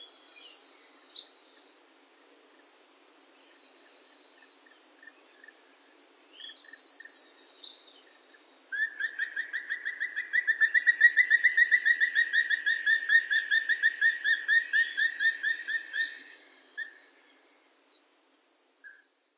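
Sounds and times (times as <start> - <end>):
black woodpecker calling at Uryu: 8.7 - 17.1.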